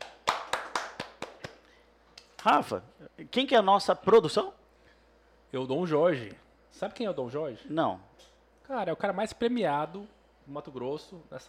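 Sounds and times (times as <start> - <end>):
hand claps: 0.0 - 2.5
speech: 2.4 - 4.6, 5.5 - 8.1, 8.7 - 11.4.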